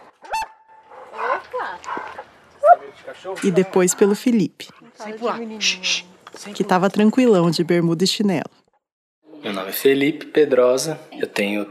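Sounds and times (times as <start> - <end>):
dog giving whiny yips: 0.2 - 1.5, 2.6 - 2.9
speech: 1.6 - 8.6, 9.7 - 11.6.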